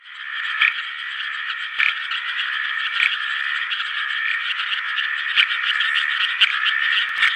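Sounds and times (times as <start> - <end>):
chubby gungan Uperoleia rugosa chorus of rasping croaks: 0.0 - 7.3.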